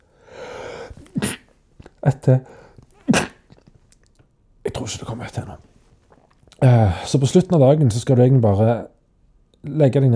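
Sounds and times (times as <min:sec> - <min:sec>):
sharp inhaling breaths: 0:00.0 - 0:01.1
loud explosive sneeze: 0:01.0 - 0:01.6, 0:03.0 - 0:03.6
speech: 0:02.0 - 0:03.3, 0:04.8 - 0:05.7, 0:06.6 - 0:08.9, 0:09.6 - 0:10.1.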